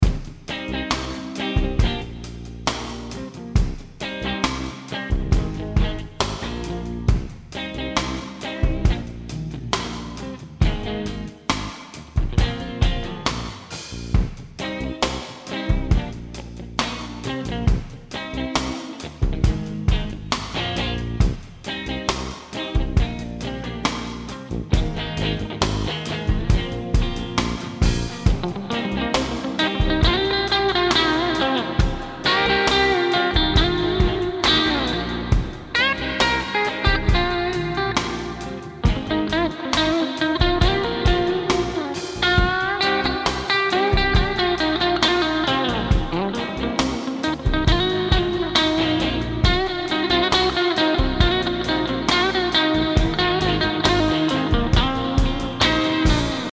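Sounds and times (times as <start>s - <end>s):
music jam in D minor: 0.0s - 56.5s.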